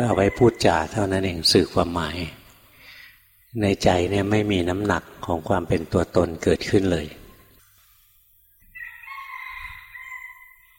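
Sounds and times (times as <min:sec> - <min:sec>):
speech: 0:00.0 - 0:02.4, 0:03.6 - 0:07.2
rooster crowing: 0:08.7 - 0:10.7.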